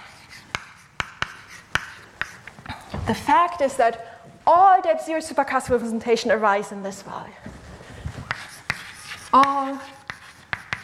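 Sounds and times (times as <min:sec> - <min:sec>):
chalk tapping on a board: 0:00.0 - 0:02.6, 0:08.2 - 0:10.8
speech: 0:03.1 - 0:07.5, 0:09.3 - 0:10.0.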